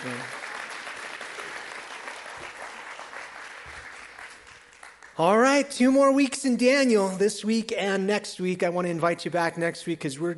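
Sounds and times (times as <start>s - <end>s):
audience applause: 0.0s - 5.2s
speech: 5.2s - 10.3s.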